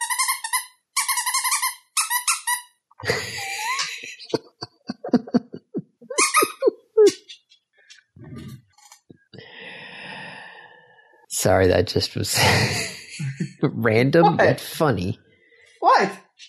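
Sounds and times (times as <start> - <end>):
dog squeaking a rubber squeaky toy: 0.0 - 2.7, 6.1 - 7.5
people laughing: 3.0 - 7.2, 12.3 - 13.8
speech: 11.4 - 15.2, 16.0 - 16.2.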